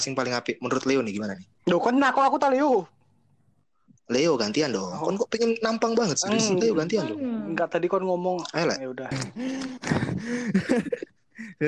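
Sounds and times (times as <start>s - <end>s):
speech: 0.0s - 3.0s, 4.1s - 11.6s
laughter: 9.1s - 11.6s
person gasping for breath: 9.3s - 10.6s.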